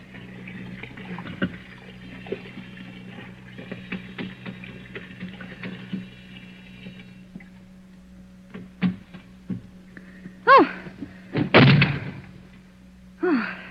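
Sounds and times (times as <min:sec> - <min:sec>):
hot water running into a sink: 0:00.0 - 0:07.5
low constant hum: 0:00.0 - 0:13.7.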